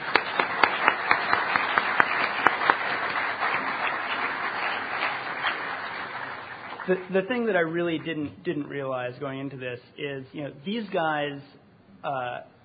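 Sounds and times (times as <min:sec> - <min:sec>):
applause from a small group: 0:00.0 - 0:08.1
speech: 0:06.9 - 0:12.5.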